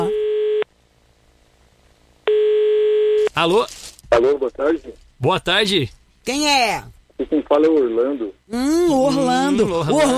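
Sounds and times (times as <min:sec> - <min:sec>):
telephone line buzzing tones while placing an international call: 0:00.0 - 0:00.7, 0:02.2 - 0:03.3
speech: 0:03.4 - 0:10.1.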